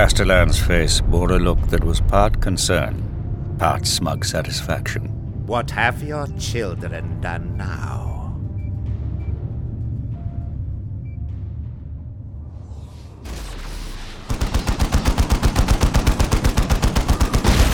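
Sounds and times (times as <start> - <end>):
speech: 0.0 - 8.1
low rumbling: 0.0 - 14.3
rapid gunfire from a turret atop a palace wall: 13.3 - 17.7.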